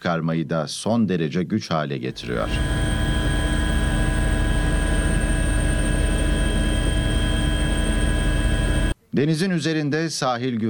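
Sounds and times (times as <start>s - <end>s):
speech: 0.0s - 3.0s, 9.2s - 10.6s
helicopter engine and rotor noise over the sea during a search operation: 2.1s - 9.0s.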